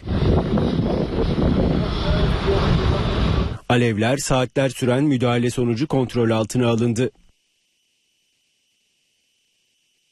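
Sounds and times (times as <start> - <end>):
rumbling wind noise buffeting the microphone: 0.0 - 3.6
firefighting planes flying overhead fighting a fire in Kocaeli: 0.0 - 3.7
speech: 3.7 - 7.2.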